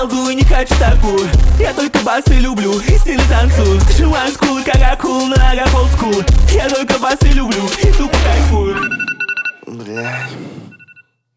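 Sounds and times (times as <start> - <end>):
speech: 0.0 - 9.1, 9.7 - 10.6
rap track: 0.0 - 9.5
telephone ringing in a rap track: 8.6 - 11.2.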